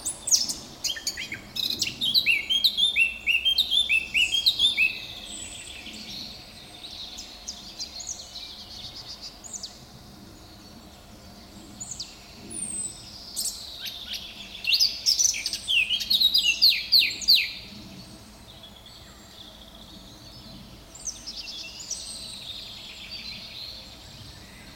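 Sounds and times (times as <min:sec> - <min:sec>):
Sylvia atricapilla Eurasian blackcap singing: 0:00.0 - 0:06.3, 0:12.6 - 0:17.6.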